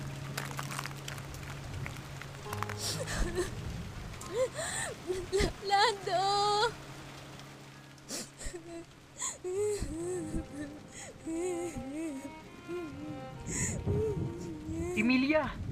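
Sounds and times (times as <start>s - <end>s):
steady rain hissing: 0.0s - 15.6s
speech: 2.8s - 3.6s, 4.3s - 6.9s, 8.6s - 15.6s
wordless voiced whimpers or sobbing cries: 2.8s - 3.6s, 8.1s - 15.0s.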